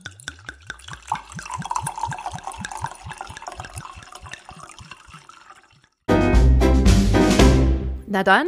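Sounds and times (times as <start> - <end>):
Kalterer Seewein wine glugging from a bottle into a glass: 0.0 - 6.0
loud burst of music: 6.1 - 8.0
speech: 8.1 - 8.4.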